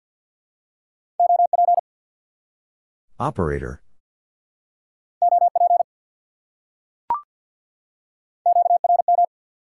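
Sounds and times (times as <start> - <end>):
rapid Morse code beeps at 50 words per minute in amateur radio contact: 1.2 - 1.8, 5.2 - 5.8, 8.5 - 9.3
speech: 3.2 - 3.8.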